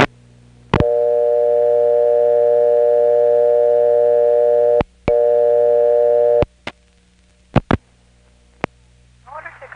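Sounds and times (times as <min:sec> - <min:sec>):
payphone tone after dialing a vacant level: 0:00.8 - 0:06.5.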